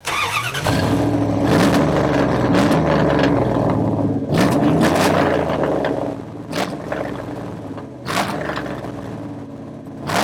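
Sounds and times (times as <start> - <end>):
V8 Magnum engine: 0.0 - 10.2.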